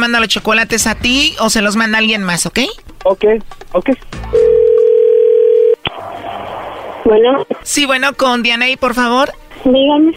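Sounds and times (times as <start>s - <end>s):
speech: 0.0s - 4.8s, 7.1s - 10.1s
steady telephone tone while dialing a call: 4.4s - 5.8s.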